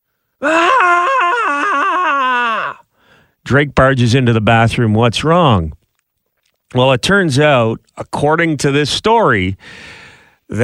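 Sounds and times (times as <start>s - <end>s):
speech: 0.4s - 0.6s, 3.5s - 5.8s, 6.7s - 10.6s
voice imitating a woman screaming: 0.4s - 2.8s.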